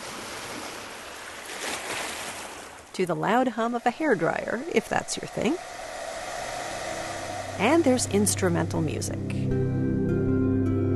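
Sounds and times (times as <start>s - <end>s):
waves lapping on a beach played from a sleep app: 0.0s - 8.9s
speech: 3.0s - 5.8s, 7.6s - 9.8s.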